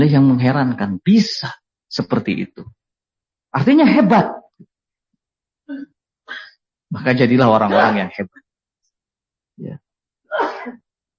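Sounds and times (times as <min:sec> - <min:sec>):
speech: 0:00.0 - 0:02.8, 0:03.5 - 0:04.4, 0:05.7 - 0:08.4, 0:09.6 - 0:10.8
sneeze: 0:07.7 - 0:08.1, 0:10.3 - 0:10.8.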